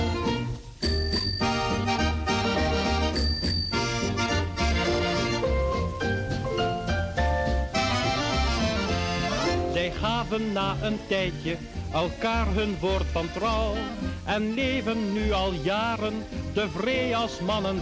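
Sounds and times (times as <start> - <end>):
full steady musical accompaniment: 0.0 - 17.7
bicycle bell ringing: 0.8 - 2.2, 3.1 - 4.3
speech: 10.4 - 17.7.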